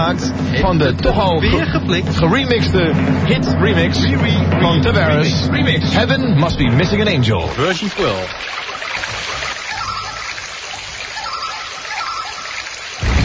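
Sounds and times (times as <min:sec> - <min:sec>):
speech: 0:00.1 - 0:09.2
small stream trickling and hissing: 0:06.4 - 0:13.1.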